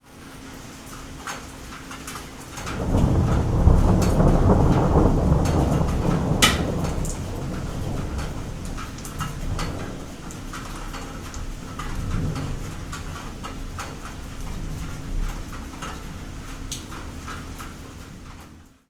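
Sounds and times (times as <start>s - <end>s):
rain: 0.0s - 18.8s
thunder: 2.6s - 17.4s.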